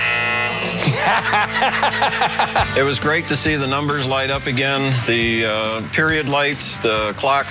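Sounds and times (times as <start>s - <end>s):
scoreboard buzzer at the end of a tied basketball game: 0.0s - 1.9s
laughter: 0.6s - 3.2s
speech: 1.1s - 7.4s.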